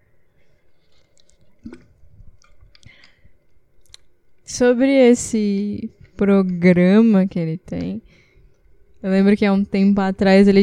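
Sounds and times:
person sipping and swallowing water: 0.7s - 4.1s
gulp and small clicks of the lips and throat: 0.8s - 3.2s, 3.8s - 4.1s
speech: 4.6s - 8.2s, 9.0s - 10.6s.

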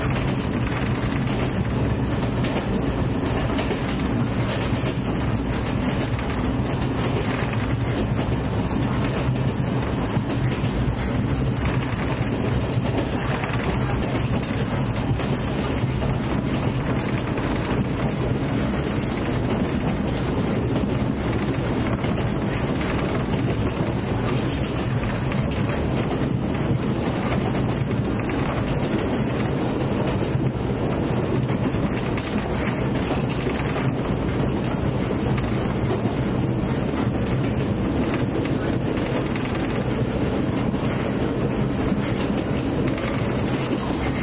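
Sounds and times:
train running with deep continuous rumble: 0.0s - 44.2s.

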